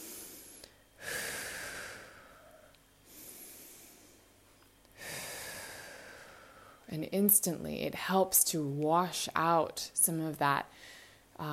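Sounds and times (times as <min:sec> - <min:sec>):
slow deep wave-like breathing: 0:00.0 - 0:06.9, 0:10.7 - 0:11.3
speech: 0:06.9 - 0:11.5.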